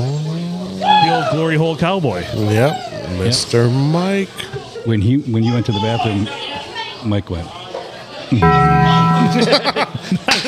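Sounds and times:
speech: 1.1s - 7.6s, 8.3s - 10.4s
deep resonant bong chime: 8.4s - 10.0s.

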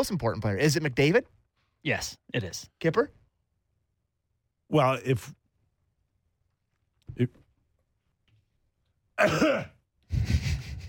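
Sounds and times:
speech: 0.0s - 3.2s, 4.7s - 5.4s, 7.2s - 7.4s, 9.2s - 10.2s
person coughing into a microphone: 9.2s - 9.8s.

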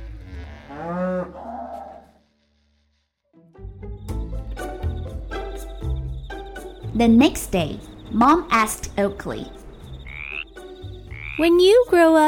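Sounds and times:
cow giving a long loud moo: 0.0s - 2.2s
speech: 7.0s - 9.6s, 11.4s - 12.2s.

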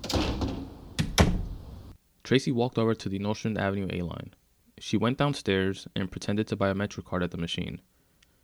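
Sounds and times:
rattling rush of movement: 0.0s - 1.9s
door shoved and slammed shut with heavy thuds: 0.0s - 2.0s
speech: 2.3s - 7.9s.

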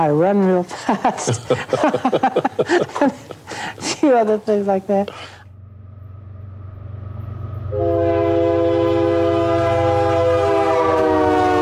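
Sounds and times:
speech: 0.0s - 5.4s
laughter: 0.7s - 4.0s
train rumbling by: 3.4s - 11.6s
loud sustained train horn blaring: 5.5s - 11.6s.

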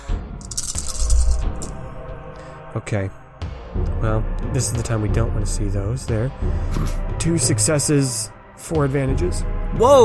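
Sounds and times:
four chunky dice clattering across a hard surface: 0.4s - 1.7s
speech: 2.8s - 3.2s, 3.8s - 10.0s.

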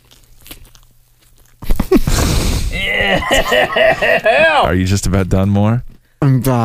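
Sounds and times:
person chewing marshmallow candy: 0.0s - 2.1s
laughter: 2.8s - 4.7s
speech: 3.0s - 6.6s.

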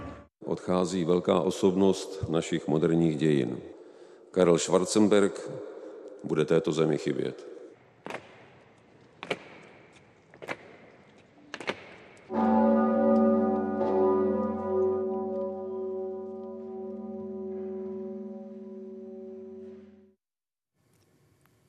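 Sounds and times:
speech: 0.7s - 3.8s, 4.4s - 8.2s
large cathedral bell tolling: 12.3s - 20.2s.

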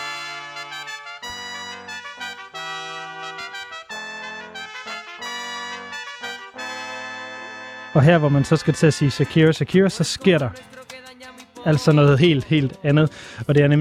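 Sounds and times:
bright loud trumpet melody opening a 1992 Puerto Rican song: 0.0s - 10.6s
speech: 8.0s - 10.7s, 11.6s - 13.7s.

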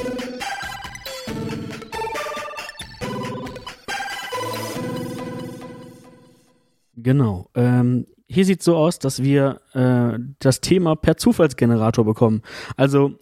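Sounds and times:
short bright electronic podcast segment intro jingle: 0.0s - 6.8s
speech: 7.0s - 13.1s.

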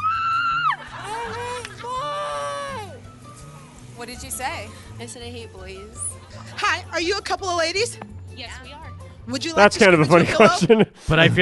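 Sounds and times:
person screaming into a pillow: 0.0s - 3.0s
laughter: 0.4s - 3.0s, 6.0s - 7.4s, 9.6s - 11.4s
speech: 4.0s - 11.4s.

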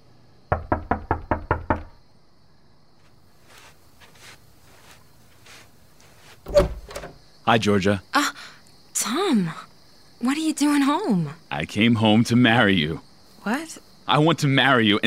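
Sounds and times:
quick firm knocking on a door: 0.5s - 2.0s
faint shuffling: 3.0s - 7.2s
speech: 7.5s - 8.2s, 10.2s - 15.0s.

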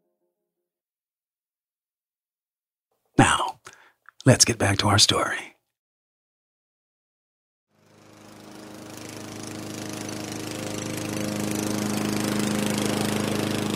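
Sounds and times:
speech: 4.2s - 5.6s
lawn mower engine starting and running: 7.7s - 13.7s.

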